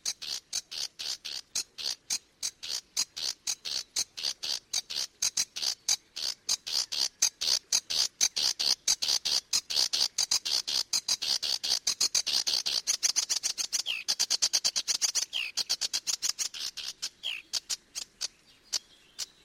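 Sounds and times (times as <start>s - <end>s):
Sedge warbler singing rattling ticks and slurred whistles: 0.0s - 19.4s.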